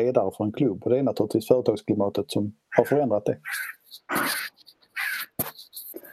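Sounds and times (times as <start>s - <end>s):
speech: 0.0s - 4.6s
harsh raspy bird screeches: 2.7s - 5.4s.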